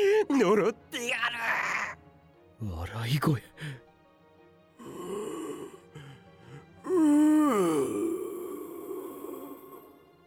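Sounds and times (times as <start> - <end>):
speech: 0.2 - 0.9, 2.6 - 3.8
eerie moaning groan from a human voice: 4.8 - 10.0.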